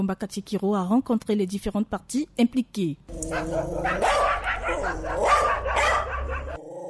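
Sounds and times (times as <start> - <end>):
speech: 0.0 - 6.1
several dogs barking: 3.2 - 6.6.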